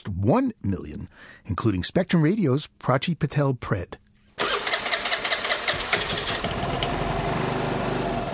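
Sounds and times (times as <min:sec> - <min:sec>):
speech: 0:00.2 - 0:04.0
small motor scooter engine starting and idling: 0:04.4 - 0:08.3.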